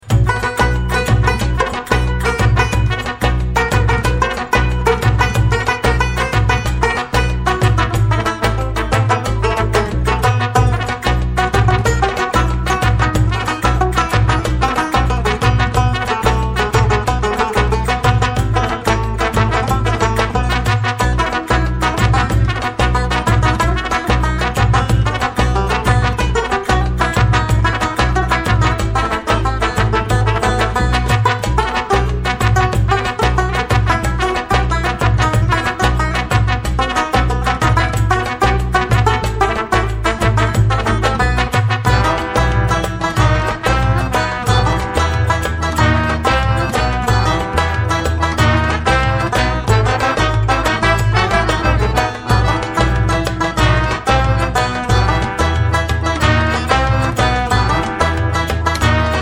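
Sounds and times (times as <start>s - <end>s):
desert banjo: 0.0s - 59.2s.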